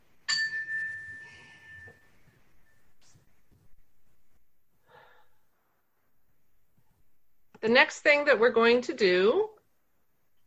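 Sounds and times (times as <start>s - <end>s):
meditation chime struck to mark silent meditation: 0.3s - 3.1s
speech: 7.6s - 9.5s.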